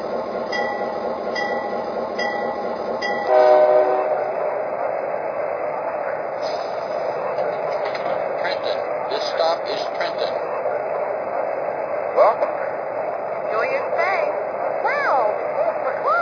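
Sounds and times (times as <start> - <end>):
Pennsylvania Railroad Aerotrain locomotive rumbling: 0.0 - 16.2
Pennsylvania Railroad Aerotrain locomotive harmonically rich horn blast: 3.2 - 4.4.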